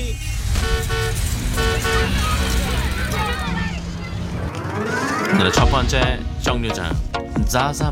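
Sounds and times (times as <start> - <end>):
bus engine rumbling: 0.0 - 6.5
bus horn toots: 0.5 - 4.6
warbling tones: 0.6 - 5.6
speech: 5.4 - 7.9.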